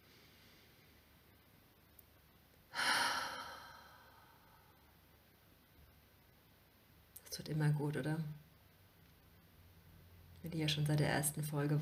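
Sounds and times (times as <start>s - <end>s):
deep breathy exhale: 2.7s - 4.8s
speech: 7.4s - 8.4s, 10.4s - 11.7s.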